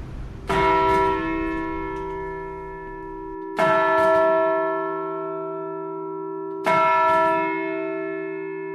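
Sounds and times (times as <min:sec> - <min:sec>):
deep hum of large church bell: 0:00.0 - 0:06.4
large church bell ringing: 0:00.0 - 0:08.7.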